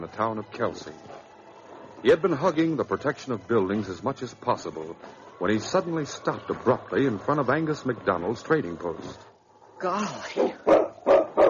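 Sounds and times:
speech: 0.0 - 1.2, 2.0 - 10.8
dog barking outside a trading post door: 10.4 - 11.4.

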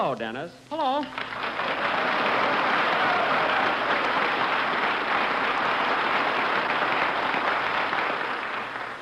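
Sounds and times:
speech: 0.0 - 2.2
large audience applauding: 1.1 - 8.9.

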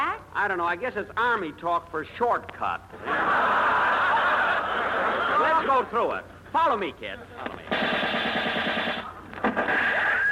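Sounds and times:
speech: 0.4 - 3.6, 5.6 - 8.0
laughter: 2.9 - 5.9
rapid gunfire across an army infiltration course: 7.7 - 10.0.

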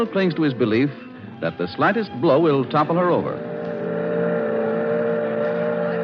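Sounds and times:
speech: 0.0 - 3.6
boat motor droning on a boat excursion to the Statue of Liberty: 3.2 - 6.0.

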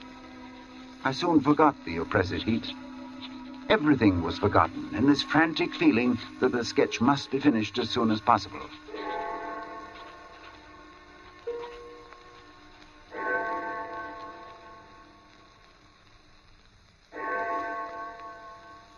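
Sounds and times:
distant church clock striking four o'clock: 0.0 - 15.4, 17.1 - 18.9
speech: 1.0 - 2.8, 3.7 - 8.8.

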